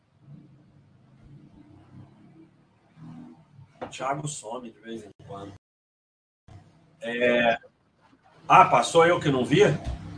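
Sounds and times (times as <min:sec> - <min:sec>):
motorcycle engine passing by with revving surges: 0:00.2 - 0:03.8, 0:09.2 - 0:10.1
speech: 0:03.9 - 0:05.6, 0:07.0 - 0:07.7, 0:08.5 - 0:10.0.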